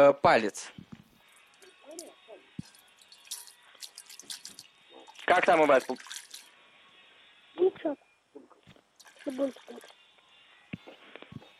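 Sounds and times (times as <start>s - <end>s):
speech: 0.0s - 0.8s, 5.3s - 6.1s, 7.6s - 8.0s, 9.2s - 9.9s
thin stream of water running from a tube into a basin: 3.0s - 6.5s
water splashes: 3.1s - 6.5s, 9.0s - 10.0s.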